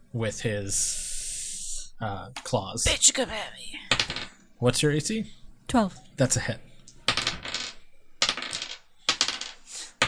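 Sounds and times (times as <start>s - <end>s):
speech: 0.1s - 1.1s, 2.0s - 4.0s, 4.6s - 6.7s
many dice clattering across a hard tabletop in a role-playing game: 3.9s - 4.5s, 7.0s - 10.0s.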